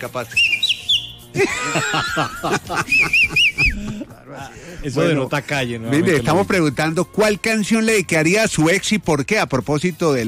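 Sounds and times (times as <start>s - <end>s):
speech: 0.0s - 0.6s, 1.3s - 10.2s
person whistling short rising-and-falling notes: 0.3s - 1.3s, 2.8s - 3.9s
laughter: 1.4s - 5.5s.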